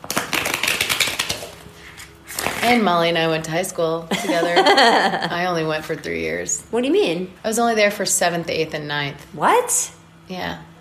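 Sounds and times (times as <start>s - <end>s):
something being shuffled with papery flicks and clicks: 0.0s - 2.8s
speech: 2.6s - 10.7s.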